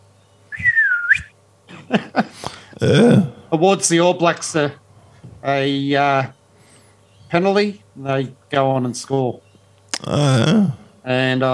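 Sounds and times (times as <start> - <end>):
person imitating a rugby referee's whistle: 0.5 - 1.3, 10.0 - 10.8
laughter: 1.7 - 3.2
speech: 1.9 - 4.8, 5.4 - 6.4, 7.3 - 9.4, 10.0 - 11.5.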